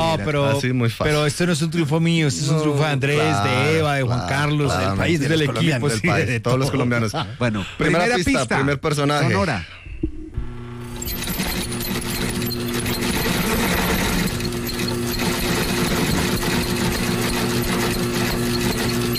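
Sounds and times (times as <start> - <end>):
speech: 0.1 - 9.8
sewing machine running: 10.8 - 19.1.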